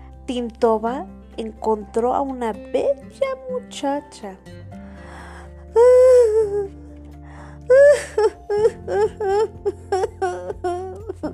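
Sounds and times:
speech: 0:00.3 - 0:04.6
young woman crying and whimpering: 0:05.7 - 0:06.8, 0:07.7 - 0:11.3.

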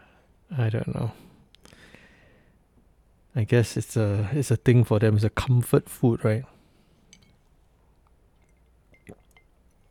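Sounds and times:
speech: 0:00.6 - 0:01.3, 0:03.4 - 0:06.5
person sipping ice-cold water: 0:08.4 - 0:09.9
gulp of ice-cold water: 0:09.0 - 0:09.4.

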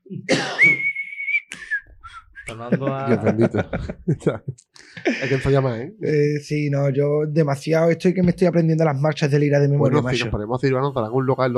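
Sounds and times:
person whistling: 0:00.6 - 0:02.6
laughter: 0:02.5 - 0:05.6
speech: 0:02.5 - 0:11.5.

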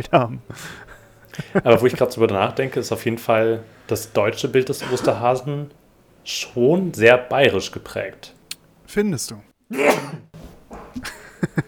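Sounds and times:
speech: 0:00.0 - 0:10.3, 0:10.9 - 0:11.6
short breathy sounds and quick sniffs: 0:00.5 - 0:01.6
laughter: 0:00.5 - 0:05.5, 0:11.0 - 0:11.6
person sneezing: 0:04.8 - 0:05.3, 0:09.7 - 0:10.3.

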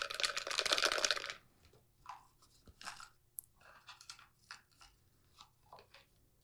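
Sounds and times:
folded paper slips shaken in a container: 0:00.0 - 0:01.4.

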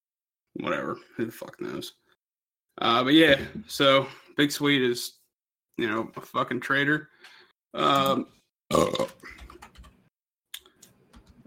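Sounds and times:
speech: 0:00.6 - 0:02.0, 0:02.8 - 0:05.2, 0:05.8 - 0:09.4
person burping: 0:07.8 - 0:09.4
keyboard clicking: 0:09.2 - 0:10.0.

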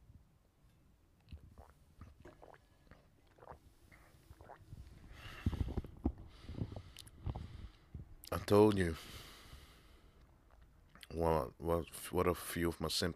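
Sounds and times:
person slurping and swallowing a drink: 0:01.2 - 0:07.6
speech: 0:08.4 - 0:09.2, 0:11.2 - 0:13.1.

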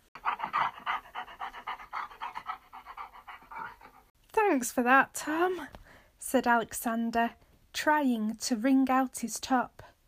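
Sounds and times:
farm dog panting excitedly: 0:00.0 - 0:04.1
speech: 0:04.5 - 0:09.8.

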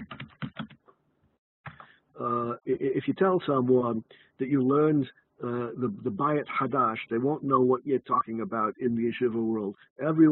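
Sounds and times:
quick keystrokes on a computer keyboard: 0:00.0 - 0:00.8
speech: 0:02.2 - 0:10.2.

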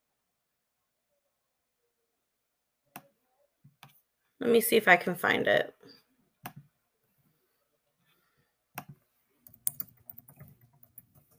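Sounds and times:
speech: 0:04.4 - 0:06.0
computer keyboard typing: 0:08.8 - 0:11.3.

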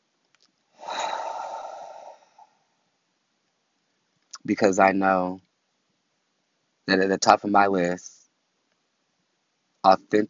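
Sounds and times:
person taking a breath: 0:00.8 - 0:02.7
speech: 0:04.5 - 0:05.4, 0:06.9 - 0:08.2, 0:09.8 - 0:10.2.

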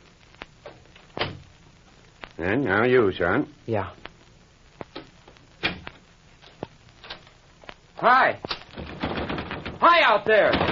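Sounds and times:
speech: 0:02.4 - 0:04.1, 0:08.0 - 0:08.5, 0:09.9 - 0:10.7
door thudding shut: 0:08.8 - 0:10.7.

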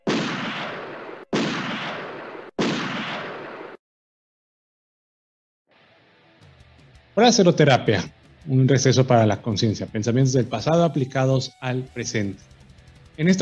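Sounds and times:
firing squad gunshots: 0:00.0 - 0:03.8
speech: 0:07.2 - 0:12.6, 0:13.2 - 0:13.4.

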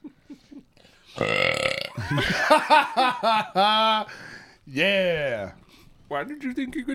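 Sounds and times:
speech: 0:01.2 - 0:01.5, 0:02.1 - 0:06.9
long loud rumbling burp: 0:01.2 - 0:02.2
person chuckling: 0:01.8 - 0:04.1.

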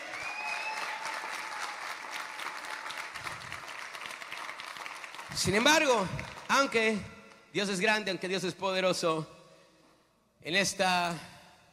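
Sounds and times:
congregation applauding: 0:00.0 - 0:06.9
speech: 0:05.3 - 0:09.4, 0:10.4 - 0:11.3.

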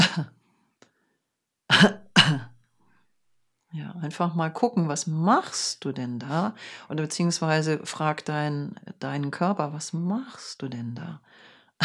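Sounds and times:
person coughing: 0:00.0 - 0:00.4, 0:01.7 - 0:02.6
throat-clearing rasp: 0:00.0 - 0:00.4, 0:01.7 - 0:02.6
speech: 0:01.8 - 0:02.0, 0:03.8 - 0:11.8.

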